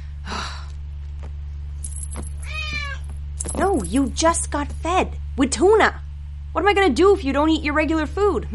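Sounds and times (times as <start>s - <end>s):
steady low electrical hum: 0.0s - 8.5s
cat meowing: 2.4s - 3.0s
speech: 3.6s - 6.0s, 6.6s - 8.5s.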